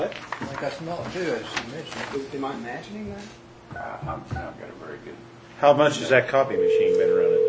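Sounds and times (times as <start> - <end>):
speech: 0.7 - 7.4
steady telephone dial tone: 6.6 - 7.4.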